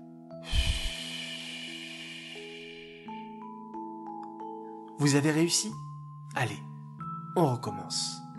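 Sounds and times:
soft sustained musical tones: 0.0 - 6.2
sharp inhale through nose and long airy exhale through mouth: 0.4 - 3.4
speech: 5.0 - 6.7, 7.4 - 8.2.

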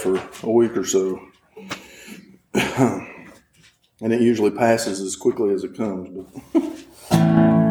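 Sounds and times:
speech: 0.0 - 1.8, 2.6 - 3.1, 4.0 - 7.6
rough coughs: 1.6 - 3.4
laughter: 6.2 - 7.1.

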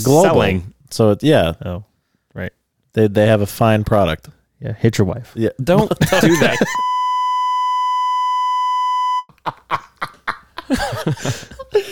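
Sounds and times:
lively voices: 0.0 - 0.7
speech: 0.0 - 6.9, 10.7 - 11.5
laughter-like bursts: 5.8 - 6.8, 9.3 - 11.9
censor beep tone: 6.8 - 9.3.

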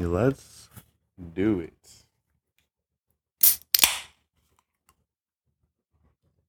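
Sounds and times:
speech: 0.0 - 2.0
beverage can tab clicking open: 3.4 - 4.1.

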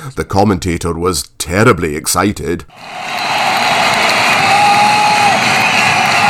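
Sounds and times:
speech: 0.0 - 3.5
packed football stadium crowd roaring at a football match: 2.7 - 6.2.

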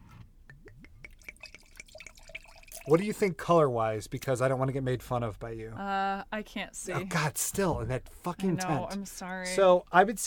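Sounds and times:
drink pouring and dripping into a glass: 0.4 - 3.2
speech: 2.9 - 10.2.

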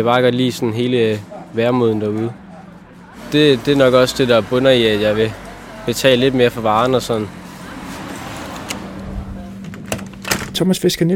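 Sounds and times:
speech: 0.0 - 2.4, 3.2 - 7.4, 10.6 - 11.1
shop door swinging shut with latch clicks: 7.9 - 10.8.

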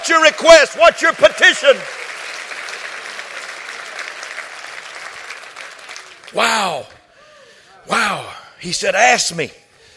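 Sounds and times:
audience clapping in praise of God: 0.0 - 7.0
speech: 0.1 - 2.0, 6.3 - 7.0, 7.9 - 9.6.

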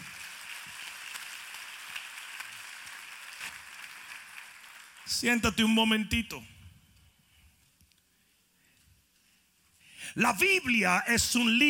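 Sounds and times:
audience applauding: 0.0 - 5.2
speech: 5.1 - 6.5, 10.2 - 11.6.

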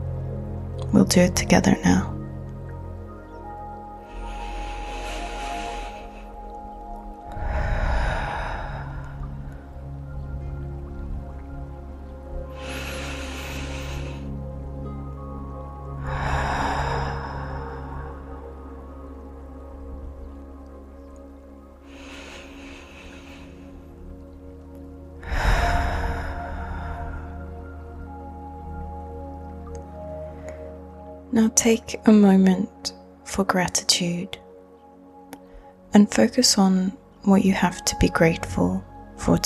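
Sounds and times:
steady low tonal background: 0.0 - 39.4
speech: 0.9 - 2.1, 31.6 - 34.4, 35.9 - 39.4
deep breaths in through an open mouth and exhaling: 3.9 - 9.8, 12.5 - 14.6, 15.9 - 18.8, 21.8 - 24.0, 25.2 - 28.6.

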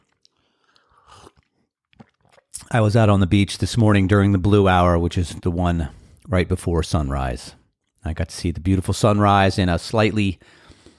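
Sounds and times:
gulp of coffee: 0.0 - 2.7
slurping hot coffee: 0.0 - 2.7
small wet mouth clicks: 0.0 - 2.7
speech: 2.7 - 10.6.

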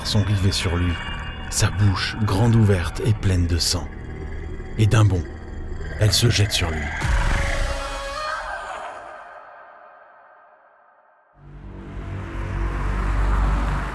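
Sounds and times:
speech: 0.1 - 4.0, 4.8 - 7.2
police car on patrol driving by in a village: 11.4 - 13.9.

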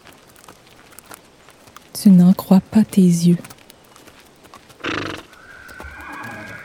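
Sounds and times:
horse hooves clip-clopping: 0.0 - 6.6
speech: 2.0 - 3.5
horse whinnying: 4.8 - 6.6.

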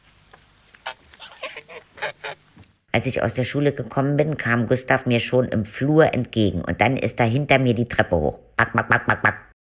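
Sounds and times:
pet bird calling with nasal honking cries: 0.8 - 2.6
speech: 3.0 - 9.4.

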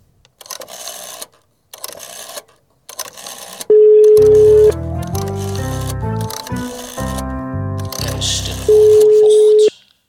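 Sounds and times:
telephone dialing beeps: 3.1 - 5.8, 8.7 - 9.7
steady electronic telephone tone: 3.7 - 4.8, 8.7 - 9.7.

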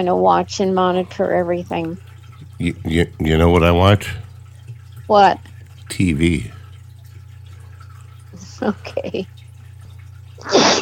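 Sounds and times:
speech: 0.0 - 4.2, 5.1 - 6.6, 8.4 - 9.4
faint steady low hum: 0.0 - 10.4
loud sneeze with breathy spray: 10.4 - 10.8.

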